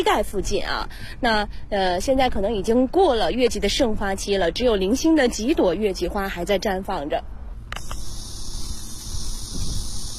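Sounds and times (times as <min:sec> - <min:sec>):
speech: 0:00.0 - 0:08.0
cicadas droning in a city park in early autumn: 0:07.7 - 0:10.1.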